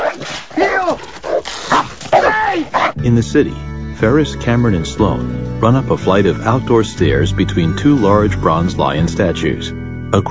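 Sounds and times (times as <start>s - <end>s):
dog barking and yipping while chasing someone across a backyard: 0.0s - 3.0s
speech: 3.0s - 10.3s.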